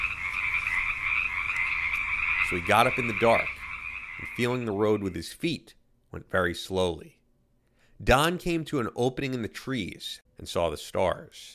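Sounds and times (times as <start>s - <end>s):
loud chorus of frogs croaking at night: 0.0s - 5.3s
speech: 2.5s - 3.6s, 4.3s - 7.2s, 8.0s - 11.5s.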